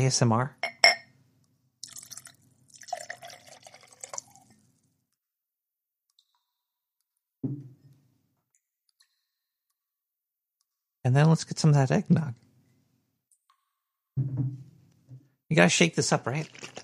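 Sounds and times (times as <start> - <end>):
speech: 0.0 - 0.7, 11.0 - 12.4, 15.5 - 16.8
bourbon pouring into a glass: 1.8 - 4.7, 16.4 - 16.8.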